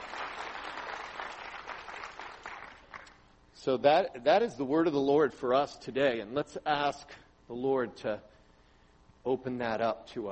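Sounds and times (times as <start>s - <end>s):
audience applause: 0.0s - 3.1s
speech: 3.6s - 8.3s, 9.2s - 10.3s.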